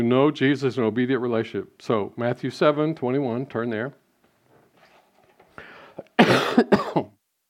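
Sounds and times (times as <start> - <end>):
speech: 0.0 - 4.0
harsh coughs: 6.2 - 7.1
throat clearing: 6.2 - 7.2.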